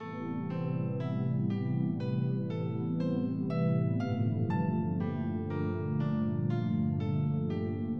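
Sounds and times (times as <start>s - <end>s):
piano arpeggio: 0.0s - 7.9s.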